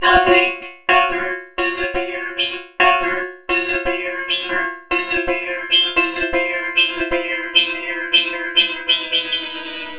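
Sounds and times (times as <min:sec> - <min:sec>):
polyphonic music: 0:00.0 - 0:09.9.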